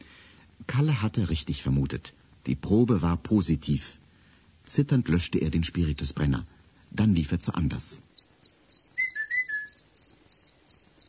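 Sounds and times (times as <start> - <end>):
speech: 0.8 - 4.0, 4.7 - 8.1
rhythmic cricket chirps: 6.3 - 7.1, 8.1 - 11.0
person whistling a signal of sliding notes: 9.0 - 9.8.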